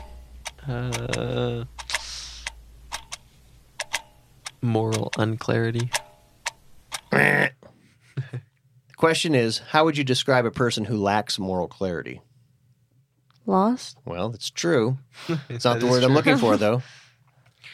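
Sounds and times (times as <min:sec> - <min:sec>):
clock ticking in a countdown: 0:00.0 - 0:03.2, 0:03.8 - 0:07.1
speech: 0:00.7 - 0:01.3, 0:04.7 - 0:06.0, 0:09.0 - 0:12.3, 0:13.5 - 0:17.0.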